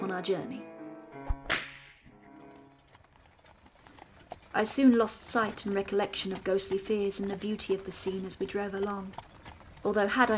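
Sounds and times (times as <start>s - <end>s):
speech: 0.2s - 0.7s, 4.5s - 10.3s
coach driver's big whip cracking over four small horses: 1.3s - 2.0s.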